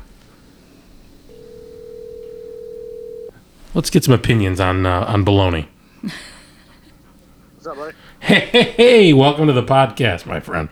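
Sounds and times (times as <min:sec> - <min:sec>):
low hum: 0:00.0 - 0:10.6
electronic telephone ringing tone through a handset: 0:01.0 - 0:03.4
speech: 0:03.8 - 0:06.3, 0:07.6 - 0:10.6
laughter: 0:03.8 - 0:10.6.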